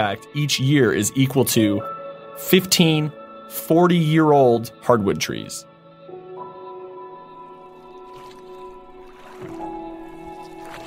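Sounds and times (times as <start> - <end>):
speech: 0.0 - 5.7
oars splashing as a boat is rowed: 7.3 - 10.8.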